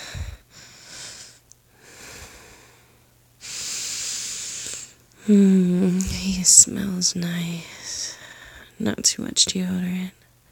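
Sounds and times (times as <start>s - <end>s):
deep nervous breathing: 0.0s - 5.0s, 7.6s - 8.8s
speech: 5.3s - 8.0s, 8.8s - 10.3s.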